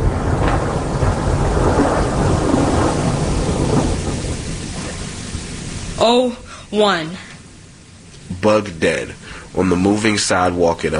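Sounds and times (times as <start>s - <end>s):
low rumble of thunder: 0.0s - 10.9s
rain hissing: 0.0s - 10.9s
speech: 6.0s - 7.3s, 8.4s - 10.9s.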